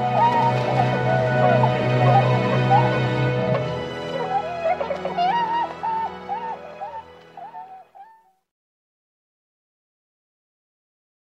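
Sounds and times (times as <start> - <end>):
Tundra swans honking: 0.0 - 8.3.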